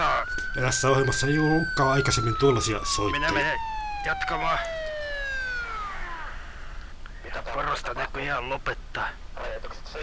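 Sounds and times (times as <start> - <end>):
police car siren wailing: 0.0 - 6.8
speech: 0.6 - 4.8, 7.6 - 9.2.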